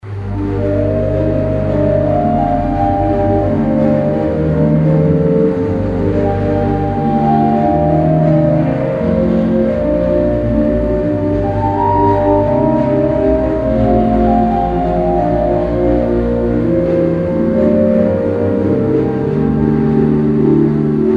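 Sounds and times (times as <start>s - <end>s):
flute: 0.1s - 21.1s.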